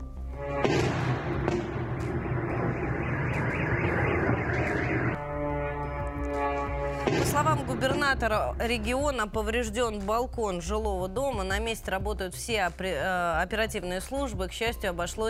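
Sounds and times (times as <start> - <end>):
explosion of a downed drone: 0.5 - 5.2, 6.9 - 8.3
car alarm wailing: 1.3 - 7.5
speech: 7.4 - 15.2.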